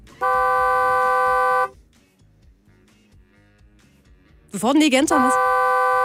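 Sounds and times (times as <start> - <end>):
Nissan car horn blast: 0.2 - 1.8, 5.1 - 6.0
speech: 4.6 - 5.5.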